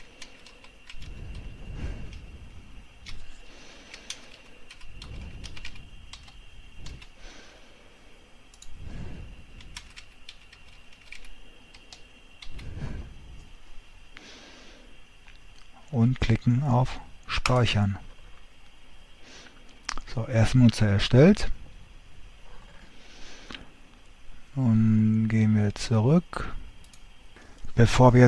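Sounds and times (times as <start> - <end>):
computer keyboard typing as a name and password are entered: 0.0 - 1.5, 3.0 - 7.2, 9.6 - 12.6
speech: 16.0 - 18.1, 20.2 - 21.6, 24.6 - 26.6, 27.8 - 28.2.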